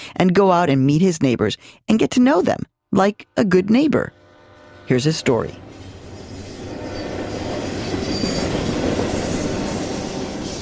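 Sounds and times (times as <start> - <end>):
speech: 0.1 - 4.2, 4.9 - 5.6
freight train rumbling past on railroad tracks in Tucson: 4.1 - 10.6
faint metallic squeals of freight train wheels: 5.6 - 10.6.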